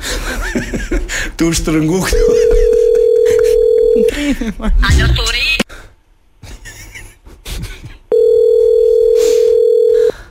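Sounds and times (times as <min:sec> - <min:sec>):
laughter: 0:00.0 - 0:01.3, 0:02.0 - 0:04.8
speech: 0:00.7 - 0:02.6, 0:04.0 - 0:05.5
loud electronic telephone tone: 0:02.6 - 0:04.1, 0:08.1 - 0:10.1.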